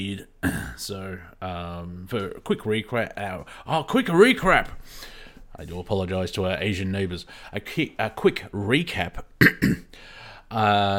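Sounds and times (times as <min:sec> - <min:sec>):
speech: 0:00.0 - 0:10.9
person coughing during live radio broadcast: 0:00.4 - 0:00.8, 0:09.4 - 0:09.9.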